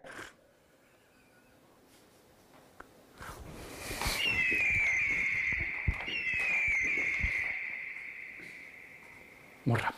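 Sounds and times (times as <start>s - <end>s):
bird of prey giving a long thin wavering whistle: 3.9s - 9.7s.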